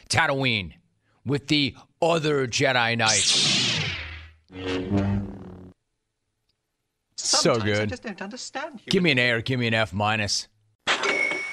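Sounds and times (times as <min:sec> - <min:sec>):
speech: 0:00.1 - 0:03.6, 0:04.5 - 0:05.3, 0:07.4 - 0:10.5
cash register ding announcing an online sale: 0:10.9 - 0:11.5.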